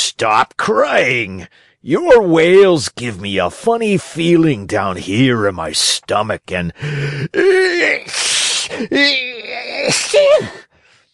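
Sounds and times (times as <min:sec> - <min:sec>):
speech: 0:00.2 - 0:10.7
man acting out loud drawn-out sneezes: 0:06.9 - 0:10.7.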